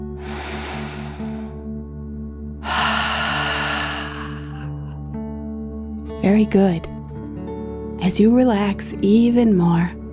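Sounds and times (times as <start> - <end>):
deep breathing in through nose and out through mouth during relaxation exercise: 0.0 - 1.9, 2.6 - 5.2
speech: 6.3 - 6.9, 8.0 - 10.0.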